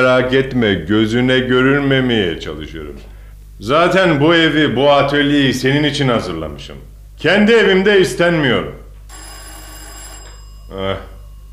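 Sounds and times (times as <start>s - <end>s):
speech: 0.0s - 8.8s, 10.7s - 11.1s
electronic doorbell ringing with a shrill buzz: 9.1s - 11.5s.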